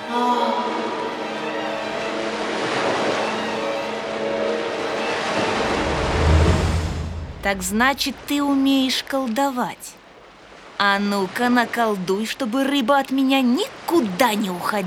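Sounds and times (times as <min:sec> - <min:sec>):
faint droning hum: 0:00.0 - 0:10.6
sea surf roaring: 0:00.0 - 0:11.8
speech: 0:07.4 - 0:10.0, 0:10.8 - 0:14.8.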